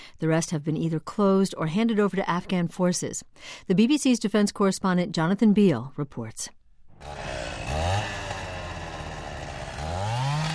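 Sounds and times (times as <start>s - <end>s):
speech: 0.2s - 8.1s
chainsaw cutting through military base walls in Helmand Province Afghanistan: 6.9s - 10.5s.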